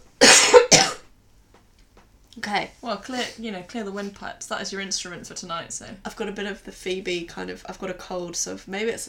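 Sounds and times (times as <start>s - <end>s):
person coughing harshly: 0.2s - 1.0s
speech: 2.4s - 9.0s.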